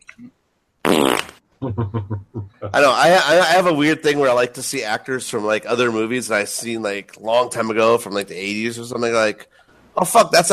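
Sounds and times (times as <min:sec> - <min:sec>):
loud buzzy rasping fart: 0:00.8 - 0:01.4
laughter: 0:01.6 - 0:02.9
speech: 0:01.6 - 0:10.5.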